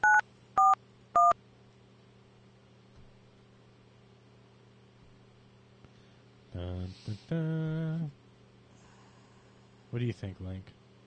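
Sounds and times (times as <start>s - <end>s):
telephone keypad dual-tone beeps as a phone number is dialed: 0.0s - 1.4s
faint low hum: 0.0s - 11.0s
speech: 6.9s - 8.2s, 9.9s - 10.8s.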